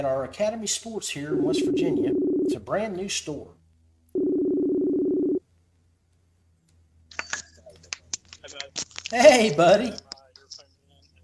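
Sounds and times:
speech: 0.0 - 3.6, 9.1 - 10.0
outgoing phone call ringback tone: 1.3 - 2.5, 4.2 - 5.4.

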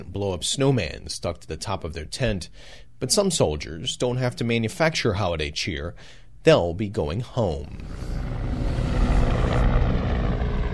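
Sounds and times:
speech: 0.0 - 8.9
military helicopter landing at a forward operating base: 7.7 - 10.7.

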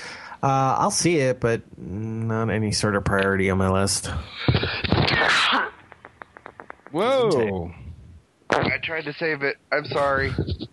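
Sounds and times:
speech: 0.4 - 5.7, 6.9 - 7.8, 8.5 - 10.6
loud sneeze caused by pollen: 4.8 - 5.8.

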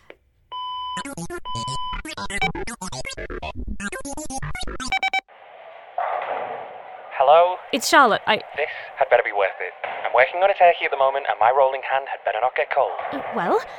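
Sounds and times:
electronic telephone dialing beeps: 0.5 - 5.3
telephone dial tone: 1.0 - 3.1
speech: 7.3 - 13.7.

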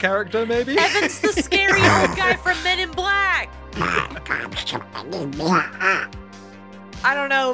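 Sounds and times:
speech: 0.0 - 6.2, 7.0 - 7.5
laughter: 0.5 - 2.8
voice imitating a quacking cartoon duck: 1.7 - 2.4, 3.8 - 6.2.

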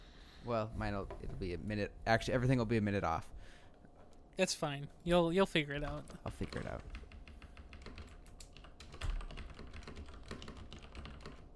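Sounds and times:
speech: 0.4 - 3.6, 4.4 - 7.0
typing on a computer keyboard: 5.9 - 11.5.

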